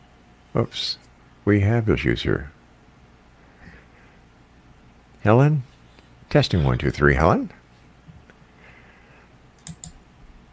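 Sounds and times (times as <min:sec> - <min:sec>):
faint hum: 0:00.0 - 0:10.5
speech: 0:00.6 - 0:02.6, 0:05.2 - 0:05.7, 0:06.3 - 0:07.6
computer keyboard typing: 0:09.6 - 0:10.0.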